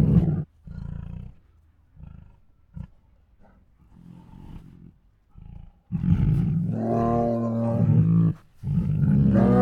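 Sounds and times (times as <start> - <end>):
tiger moaning: 0.0 - 9.5.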